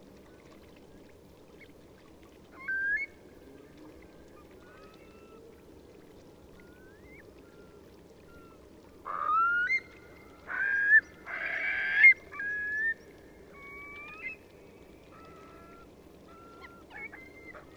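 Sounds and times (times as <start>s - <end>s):
Eurasian curlew flock calling while taking off: 6.6s - 14.5s, 15.1s - 17.7s.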